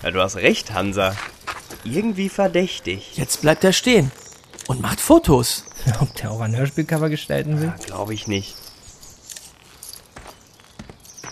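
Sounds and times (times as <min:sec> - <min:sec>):
speech: 0:00.0 - 0:08.6
man's footsteps walking away outdoors: 0:00.6 - 0:05.7, 0:07.9 - 0:11.3.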